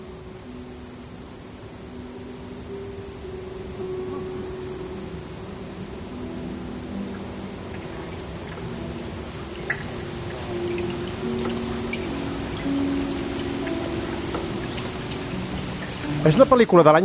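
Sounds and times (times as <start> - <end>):
steady rain falling: 0.0 - 17.0
speech: 16.2 - 17.0.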